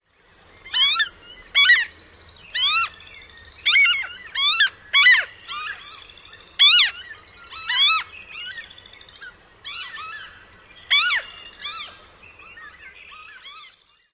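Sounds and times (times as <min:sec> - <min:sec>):
Franklin's Gull typical calls: 0:00.7 - 0:03.0, 0:03.6 - 0:12.0.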